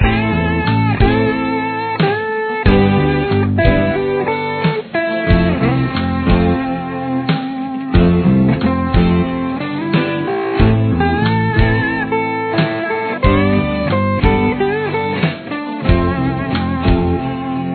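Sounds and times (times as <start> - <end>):
Am guitar solo: 0.0 - 17.7.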